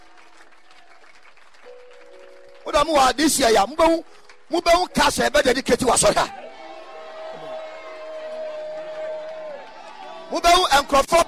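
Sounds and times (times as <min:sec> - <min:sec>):
worshipping crowd clapping: 0:00.0 - 0:04.9, 0:05.8 - 0:11.2
sustained musical tone: 0:01.7 - 0:05.8
speech: 0:02.7 - 0:06.4, 0:10.3 - 0:11.2.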